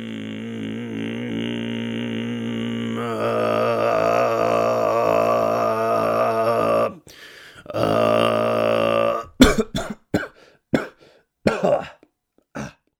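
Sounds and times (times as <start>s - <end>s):
amateur throat singing with buzzing drone and whistly overtones: 0.0s - 12.9s
brief rough coughs: 9.3s - 12.9s
throat clearing: 9.3s - 12.9s.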